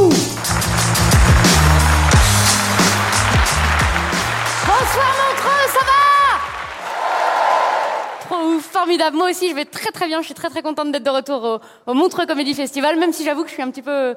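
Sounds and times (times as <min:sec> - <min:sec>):
large comedy festival audience clapping loudly: 0:00.0 - 0:09.4
shrill whoops and cheers: 0:02.1 - 0:08.2
speech: 0:08.8 - 0:14.1.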